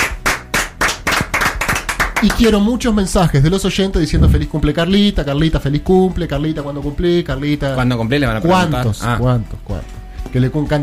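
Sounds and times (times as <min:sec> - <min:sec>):
a few people clapping hands: 0:00.0 - 0:02.8
speech: 0:02.2 - 0:10.8.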